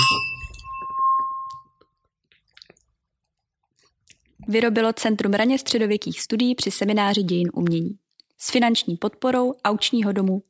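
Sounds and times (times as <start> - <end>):
glasses clinking in a toast: 0.0 - 1.8
speech: 4.5 - 10.4.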